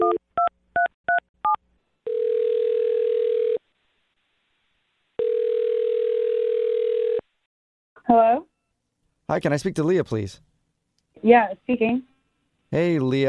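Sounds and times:
long steady telephone ringback tones: 2.1s - 3.6s, 5.2s - 7.2s
speech: 8.1s - 8.5s, 9.3s - 10.5s, 11.2s - 12.1s, 12.7s - 13.2s.

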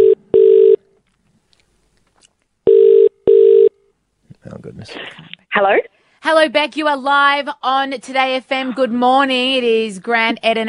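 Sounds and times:
telephone ringback tone on an outgoing call: 0.0s - 0.8s, 2.7s - 3.7s
speech: 5.6s - 10.6s.

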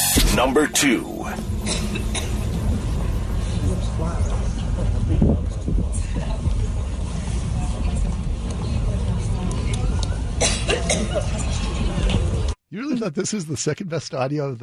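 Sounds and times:
crowd noise at a statue unveiling: 0.0s - 12.6s
low rumble of traffic: 0.0s - 12.6s
speech: 0.3s - 2.1s, 12.7s - 14.6s
woman coughing at a statue unveiling: 1.6s - 2.4s, 10.4s - 11.3s.

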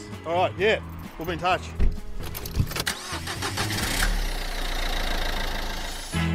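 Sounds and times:
speech: 0.3s - 1.8s
car starter cranking with a rapid rattle: 1.8s - 6.2s.

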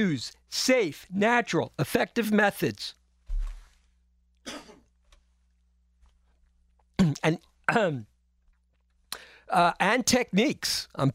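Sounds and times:
speech: 0.0s - 3.0s, 7.0s - 8.1s, 9.5s - 11.1s
person coughing: 4.4s - 4.9s, 7.0s - 8.0s.

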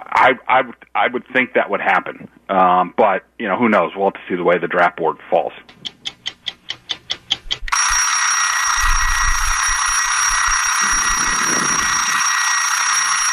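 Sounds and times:
speech: 0.2s - 5.9s
loud bell ringing continuously: 7.7s - 13.3s.

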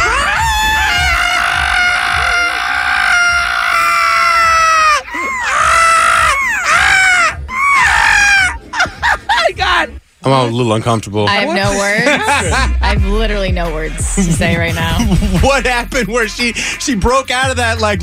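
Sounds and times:
people imitating a monkey mating call: 0.0s - 9.4s
laughter: 5.0s - 9.9s, 11.5s - 13.0s, 14.4s - 15.8s
speech: 10.3s - 18.0s.

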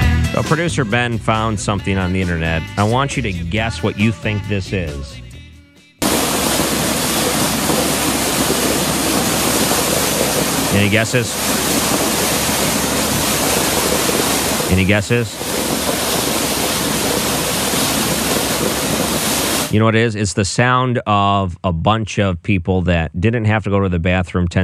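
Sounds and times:
speech: 0.4s - 5.3s, 10.7s - 11.6s, 14.7s - 15.6s, 19.7s - 24.6s
water gushing from a fire hydrant smashed by a car: 6.0s - 19.8s.

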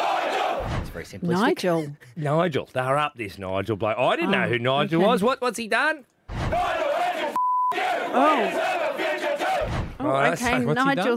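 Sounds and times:
large protest crowd chanting in unison: 0.0s - 1.0s, 6.3s - 11.1s
speech: 1.0s - 6.9s, 7.8s - 9.4s, 10.0s - 11.1s
short electronic censor beep: 7.4s - 7.8s.

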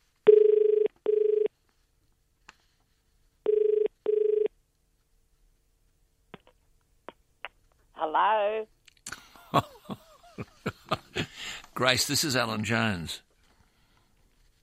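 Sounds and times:
telephone ringing with electronic double-bursts: 0.3s - 1.5s, 3.5s - 4.5s
speech: 8.1s - 8.8s, 9.5s - 9.8s, 11.2s - 13.3s
laughter: 9.1s - 11.5s.

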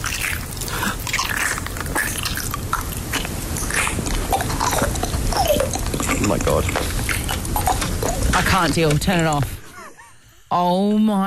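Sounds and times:
person chewing honeycomb: 0.0s - 8.8s
speech: 6.4s - 7.0s, 8.4s - 9.6s, 10.5s - 11.2s.

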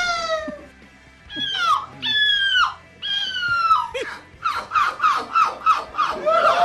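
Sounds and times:
person imitating a seagull in a seagull-imitation contest: 1.3s - 6.6s.

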